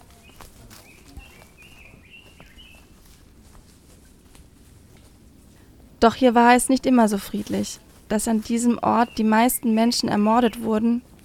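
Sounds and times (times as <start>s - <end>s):
light footsteps on stone: 0.0s - 5.5s, 7.1s - 9.2s
birds chirping on a church square: 0.0s - 11.0s
speech: 6.0s - 11.1s.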